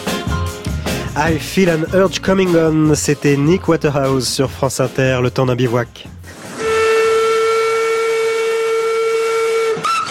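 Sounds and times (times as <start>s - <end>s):
speech: 1.2s - 6.2s
whistle of a 126-year-old steam locomotive on the Baie de Somme line: 6.4s - 10.1s.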